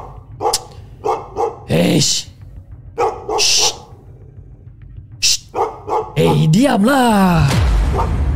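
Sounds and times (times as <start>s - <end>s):
dog barking loudly with short sharp yelps: 0.0s - 2.0s, 3.0s - 4.0s, 5.4s - 6.5s, 7.9s - 8.1s
speech: 1.7s - 2.3s, 6.2s - 8.2s.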